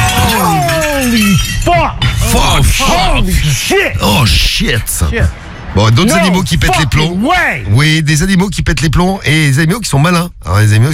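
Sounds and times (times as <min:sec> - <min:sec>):
glass pane of a vivarium shattering as a python breaks it: 0:00.0 - 0:03.6
speech: 0:01.9 - 0:10.9.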